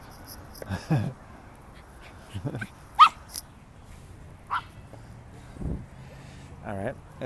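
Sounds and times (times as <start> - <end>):
speech: 0.7 - 1.2, 2.3 - 2.8, 6.7 - 7.2
excited puppy yipping and barking: 3.0 - 3.4, 4.5 - 4.8.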